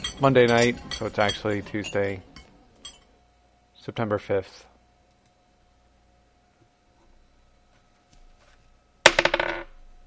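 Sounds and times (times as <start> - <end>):
speech: 0.2 - 2.3, 3.9 - 4.7
dice clattering on a hard surface: 9.1 - 9.7.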